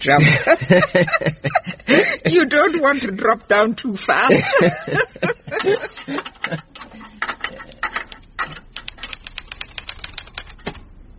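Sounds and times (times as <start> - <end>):
speech: 0.0 - 6.6
laughter: 0.1 - 3.0, 4.2 - 6.8
typewriter keystrokes: 8.8 - 10.9.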